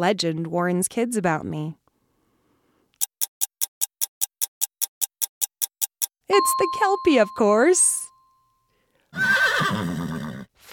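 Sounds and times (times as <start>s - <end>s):
speech: 0.0s - 1.8s, 6.3s - 8.0s, 9.2s - 10.1s
horse neighing: 9.1s - 10.5s.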